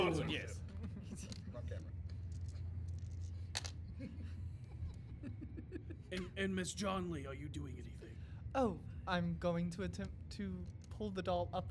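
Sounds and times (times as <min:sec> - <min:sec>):
low hum: 0:00.0 - 0:11.6
speech: 0:00.1 - 0:00.6, 0:01.2 - 0:02.0, 0:04.0 - 0:04.3, 0:05.2 - 0:11.6
physical dice tumbling across a tabletop during a role-playing game: 0:02.3 - 0:03.8.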